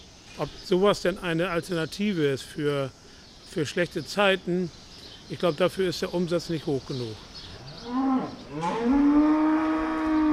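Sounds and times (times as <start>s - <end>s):
speech: 0.4s - 9.1s
dairy cows mooing in a barn on a farm: 7.7s - 10.3s.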